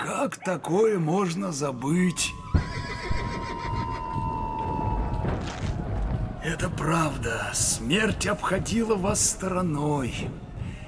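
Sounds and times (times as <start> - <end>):
speech: 0.2 - 2.5, 6.4 - 10.4
horse hooves shuffling and stamping: 2.4 - 10.8
horse whinnying: 2.5 - 4.1.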